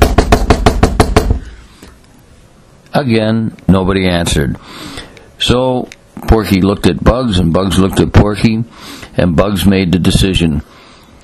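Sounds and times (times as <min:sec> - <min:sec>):
firm knocking on a door: 0:00.0 - 0:01.4
speech: 0:03.0 - 0:10.7.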